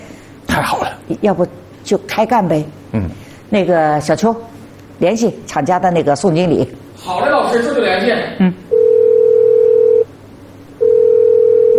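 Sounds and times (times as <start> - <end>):
speech: 0.6 - 8.6
phone line ringback tones, long steady electronic tones: 8.7 - 10.1, 10.8 - 11.7.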